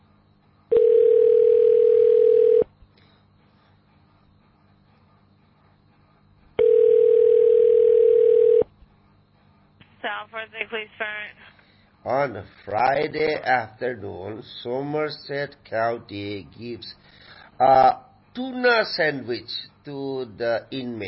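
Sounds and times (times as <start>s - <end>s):
telephone dial tone while calling phone numbers: 0.7s - 2.7s, 6.6s - 8.6s
speech: 10.4s - 11.4s, 12.0s - 21.0s.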